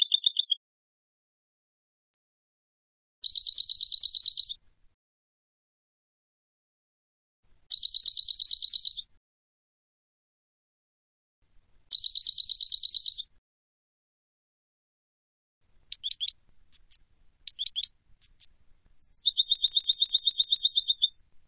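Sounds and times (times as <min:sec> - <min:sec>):
European goldfinch Carduelis carduelis buzzy rattling phrases: 0:03.2 - 0:04.6, 0:07.7 - 0:09.1, 0:15.9 - 0:21.2.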